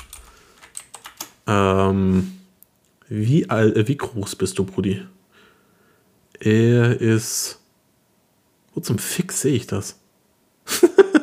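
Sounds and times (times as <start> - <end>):
typing on a computer keyboard: 0.0 - 1.4
speech: 1.5 - 2.4, 3.1 - 5.2, 6.4 - 7.6, 8.8 - 10.0.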